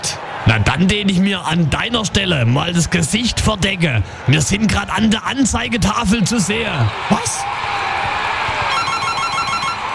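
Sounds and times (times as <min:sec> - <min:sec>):
speech: 0:00.5 - 0:07.7
electronic telephone ringing: 0:08.7 - 0:09.8.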